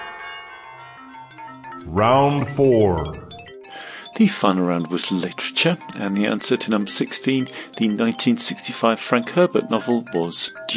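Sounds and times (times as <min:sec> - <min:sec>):
tubular bells ringing: 0:00.0 - 0:10.7
speech: 0:01.8 - 0:03.2, 0:04.2 - 0:10.7
dense musical texture: 0:01.9 - 0:03.5.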